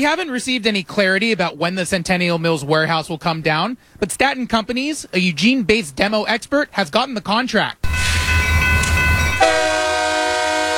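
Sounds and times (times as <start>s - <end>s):
speech: 0.0s - 7.9s
freight train rumbling past with a heavy low roar: 7.8s - 10.7s.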